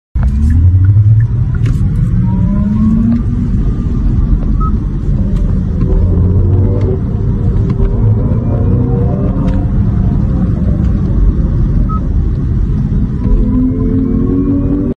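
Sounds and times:
electric car: 0:00.2 - 0:14.9.

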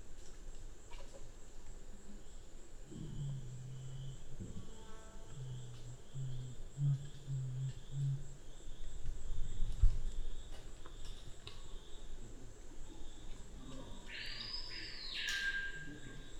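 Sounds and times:
black curassow very low humming booms: 0:02.9 - 0:10.5
constant high-pitched insect tone: 0:02.9 - 0:12.1, 0:12.8 - 0:16.3.

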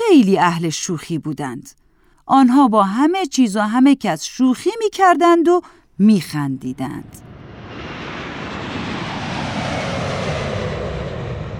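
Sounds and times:
speech: 0:00.1 - 0:07.3
airplane engine roaring during climb: 0:06.7 - 0:11.5.

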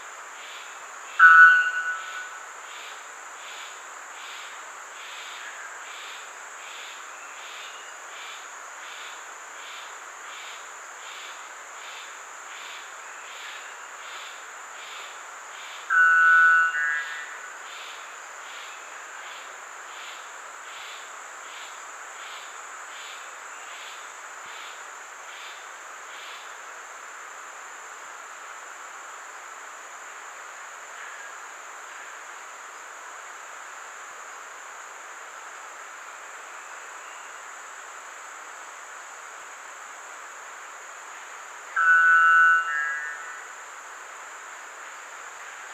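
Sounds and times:
white bellbird calling: 0:01.2 - 0:02.3, 0:15.9 - 0:17.3, 0:41.8 - 0:43.4.

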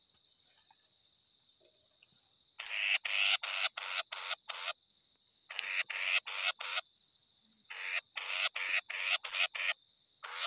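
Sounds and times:
steady high-pitched insect drone: 0:00.0 - 0:10.4
mixed batis Batis mixta giving harsh rasping calls: 0:02.6 - 0:04.7, 0:05.5 - 0:06.8, 0:07.7 - 0:10.4.

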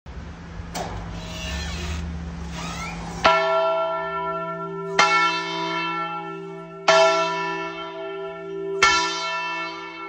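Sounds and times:
big bell: 0:03.2 - 0:10.0.

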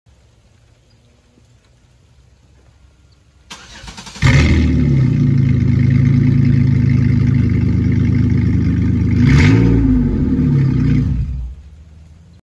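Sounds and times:
Pontiac car exhaust: 0:03.6 - 0:12.4.

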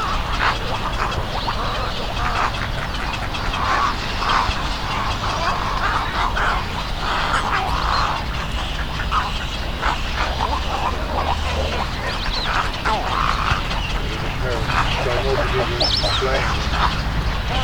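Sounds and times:
laughter: 0:00.1 - 0:17.6
dimorphic egret: 0:05.9 - 0:17.6.

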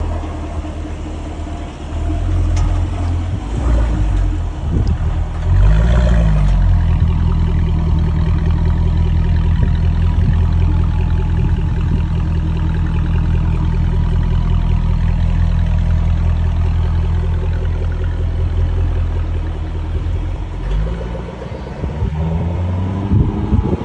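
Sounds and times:
Jaguar car exhaust: 0:00.0 - 0:23.8.

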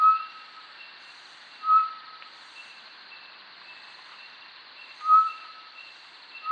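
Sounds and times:
constant background hiss: 0:00.0 - 0:06.5
short-tailed batis Batis mixta calling: 0:01.6 - 0:02.2, 0:05.0 - 0:05.6.

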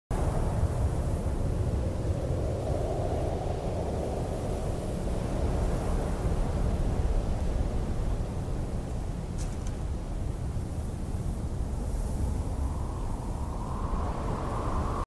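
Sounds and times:
wind in desert: 0:00.1 - 0:15.0.

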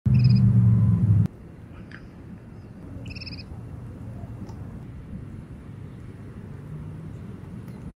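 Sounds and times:
Calidris sandpiper calls: 0:00.1 - 0:00.5, 0:03.0 - 0:04.3.

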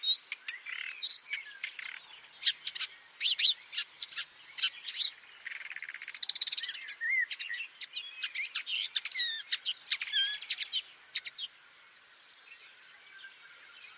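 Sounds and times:
Woodchat shrike chattering with clicks, rasping notes and whistled slurs: 0:00.5 - 0:11.5.

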